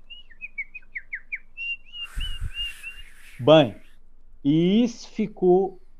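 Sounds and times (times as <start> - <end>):
person whistling in imitation of a bird at a concert: 2.0 - 3.3
speech: 3.4 - 3.8, 4.4 - 5.8.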